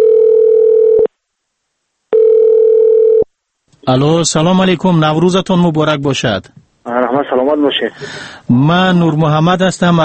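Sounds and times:
telephone ringback tone of an outgoing call: 0.0 - 1.1, 2.1 - 3.3
speech: 3.9 - 10.0.

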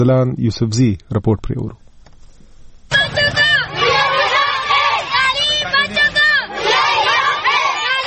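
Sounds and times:
speech: 0.0 - 1.8
schoolgirls and schoolboys shouting and chanting slogans at a street march: 2.9 - 8.0.

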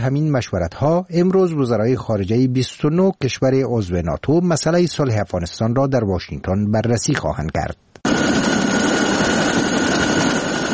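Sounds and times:
speech: 0.0 - 8.4
military helicopter passing overhead with engine drone and faint whine: 8.1 - 10.7.

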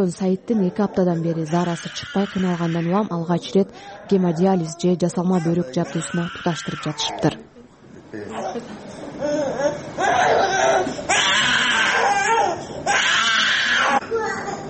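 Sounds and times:
speech: 0.0 - 7.5, 8.1 - 8.8
one-year-old boy crying during hemodialysis in hospital: 1.5 - 3.1, 4.2 - 7.4, 9.2 - 14.6.

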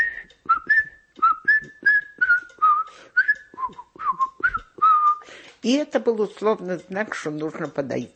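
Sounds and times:
person whistling a fugue as a signal whistle: 0.0 - 5.2
speech: 5.6 - 8.1.

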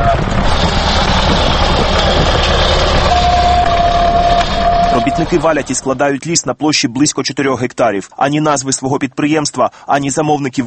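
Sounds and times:
tractors roaring in an old monastery forest: 0.0 - 6.1
thin, sustained motor whine: 0.1 - 5.8
speech: 5.1 - 10.6.

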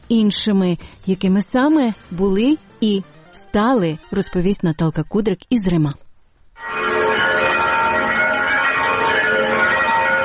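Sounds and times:
speech: 0.1 - 6.0
Easter church bells ringing: 6.6 - 10.2.

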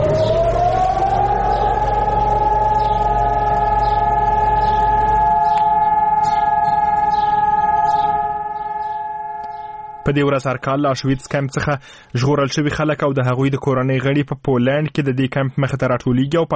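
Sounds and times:
low rumble: 0.0 - 10.2
memorial alarm siren wailing in Jerusalem: 0.0 - 11.6
speech: 10.1 - 16.5.

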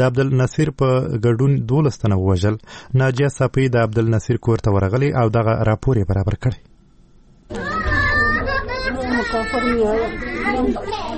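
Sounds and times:
speech: 0.0 - 6.7, 9.3 - 11.1
family crying and wailing in a grieving home: 7.5 - 11.1.

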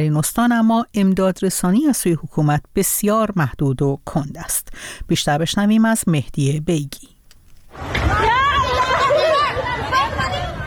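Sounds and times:
speech: 0.0 - 7.1
panicked crowd of flood victims shouting: 7.8 - 10.6.

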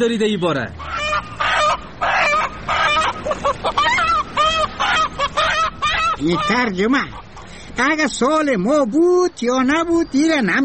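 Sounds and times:
speech: 0.0 - 0.9, 6.2 - 7.2, 7.8 - 10.6
chicken clucking: 0.8 - 7.5.

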